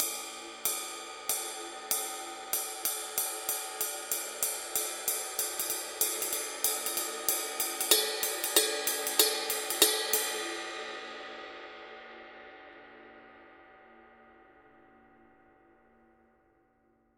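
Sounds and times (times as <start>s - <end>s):
ride cymbal pattern: 0.0s - 11.3s.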